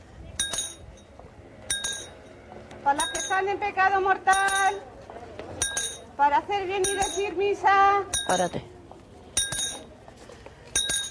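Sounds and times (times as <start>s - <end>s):
small bright bell ringing: 0.4s - 1.1s, 1.7s - 2.2s, 3.0s - 3.5s, 4.3s - 4.8s, 5.6s - 6.1s, 6.8s - 7.4s, 8.1s - 8.6s, 9.4s - 9.9s, 10.7s - 11.0s
speech: 2.8s - 4.9s, 6.2s - 8.7s.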